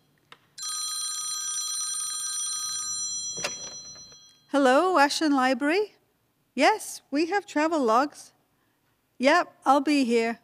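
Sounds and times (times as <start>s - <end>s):
telephone bell ringing: 0.6s - 4.6s
telephone clatter: 3.3s - 4.2s
speech: 4.5s - 6.0s, 6.6s - 8.4s, 9.2s - 10.4s.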